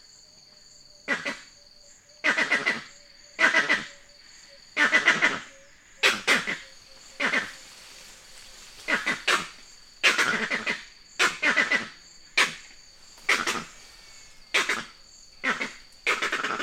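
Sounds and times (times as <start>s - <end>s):
faint steady high insect tone: 0.0s - 16.6s
vervet monkey calling in rhythmic harsh bursts: 4.8s - 7.6s, 8.8s - 12.6s, 13.2s - 13.7s, 14.5s - 16.6s.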